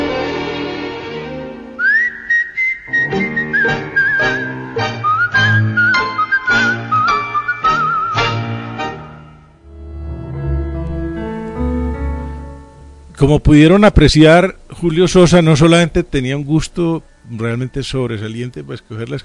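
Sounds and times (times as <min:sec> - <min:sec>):
band playing rhythmic tango accompaniment: 0:00.0 - 0:13.1
tango singer whistling a tango tune: 0:01.8 - 0:08.5
speech: 0:13.2 - 0:19.2.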